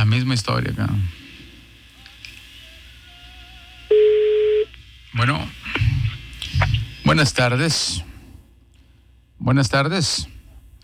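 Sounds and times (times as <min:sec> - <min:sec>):
faint hum: 0:00.0 - 0:10.8
speech: 0:00.3 - 0:01.2, 0:07.2 - 0:08.1, 0:09.4 - 0:10.3
electronic telephone ringing tone over a phone line: 0:03.9 - 0:04.7.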